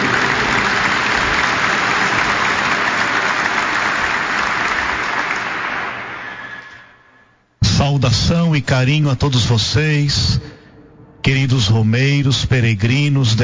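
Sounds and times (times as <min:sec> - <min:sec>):
large audience of pilgrims applauding at a shrine: 0:00.0 - 0:07.0
speech: 0:08.1 - 0:10.6, 0:11.2 - 0:13.4.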